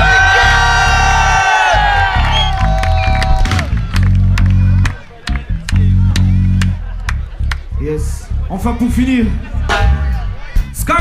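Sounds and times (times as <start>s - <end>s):
audience cheering and whooping for a guitarist at a live music show: 0.0s - 5.1s
sustained music at a live music show: 0.3s - 10.9s
scattered claps: 2.6s - 7.7s
speech: 8.6s - 10.0s.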